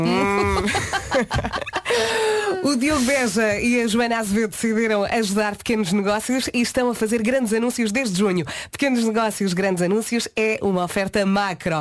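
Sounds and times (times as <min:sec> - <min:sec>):
person imitating a cow mooing: 0:00.0 - 0:00.7
laughter: 0:00.2 - 0:02.2
speech: 0:01.2 - 0:11.8.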